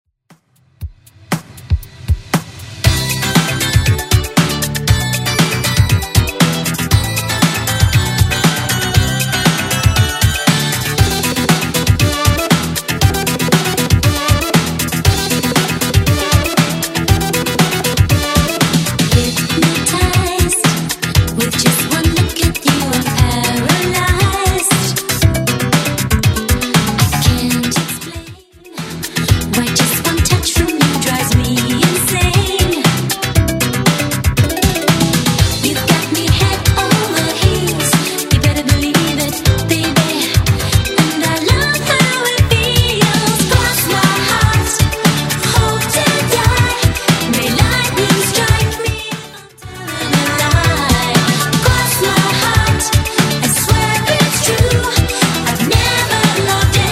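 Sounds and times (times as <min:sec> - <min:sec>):
80s drum machine beat at 118 bpm: 0:00.3 - 0:56.9.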